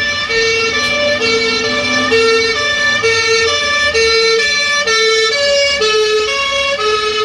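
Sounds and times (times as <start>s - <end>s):
traffic rumble: 0.0s - 7.2s
two-tone ambulance siren passing: 0.0s - 7.2s.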